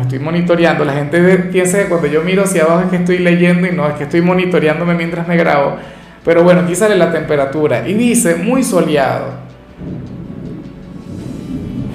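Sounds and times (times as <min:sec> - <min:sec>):
speech: 0:00.1 - 0:10.0
thunder rumbling from a storm outside: 0:09.5 - 0:11.9.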